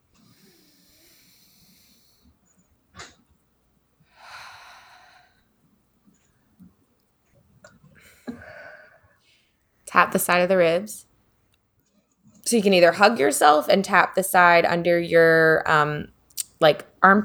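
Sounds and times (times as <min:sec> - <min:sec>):
deep breaths during a self-calming tapping exercise: 0:00.2 - 0:02.4, 0:04.1 - 0:05.6, 0:08.0 - 0:09.4
speech: 0:10.0 - 0:11.1, 0:12.5 - 0:17.2.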